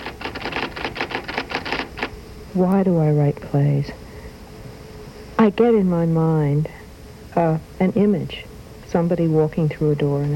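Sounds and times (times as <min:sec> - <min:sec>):
typewriter clacking in a suburban home: 0:00.0 - 0:02.1
speech: 0:02.6 - 0:04.0, 0:05.4 - 0:10.3.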